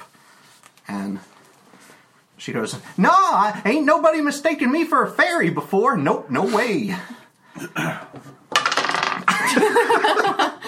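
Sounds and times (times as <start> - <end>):
speech: 1.1 - 1.4, 2.4 - 8.3, 9.5 - 10.5
dice knocked and clattering across a tabletop: 8.5 - 9.3
laughter: 9.3 - 10.6.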